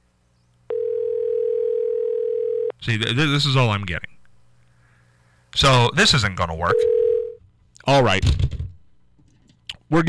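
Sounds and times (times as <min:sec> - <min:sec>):
phone line ringing tone in the earpiece: 0:00.7 - 0:02.7, 0:06.7 - 0:07.4
speech: 0:02.8 - 0:04.2, 0:05.6 - 0:07.0, 0:07.8 - 0:08.6.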